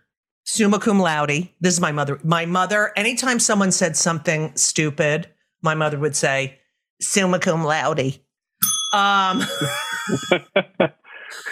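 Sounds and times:
speech: 0.5 - 11.5
bright bell ding as a sound effect: 8.6 - 10.5
laughter: 9.4 - 11.5.

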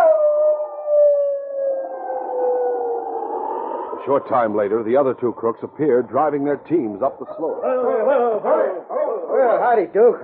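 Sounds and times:
man imitating a shrill wolf howl: 0.0 - 3.2, 7.4 - 9.6
speech: 4.0 - 8.5, 9.6 - 10.2.

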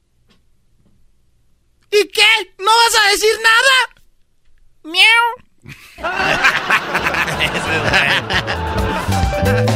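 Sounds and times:
speech: 2.0 - 3.9, 4.8 - 8.8
person imitating a cat meowing: 4.9 - 5.4
laughter: 5.7 - 9.7.

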